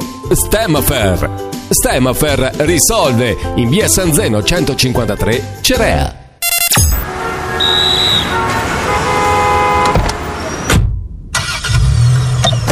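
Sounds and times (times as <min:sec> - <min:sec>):
speech: 0:00.3 - 0:06.2
car horn tooting: 0:06.4 - 0:10.4
cars passing: 0:07.0 - 0:10.7
loud city traffic with steady engine rumble: 0:07.0 - 0:12.6.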